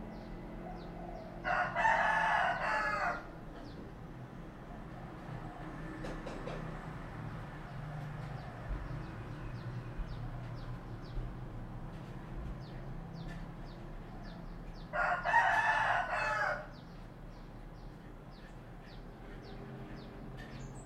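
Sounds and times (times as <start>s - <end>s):
low rumbling background noise: 0.0s - 20.8s
rooster crowing: 0.6s - 3.4s, 14.8s - 16.9s.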